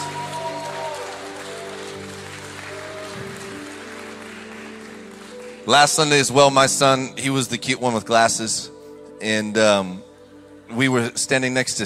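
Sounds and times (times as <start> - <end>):
church audience applauding during a service: 0.0 - 6.2
speech: 5.6 - 10.1, 10.7 - 11.8.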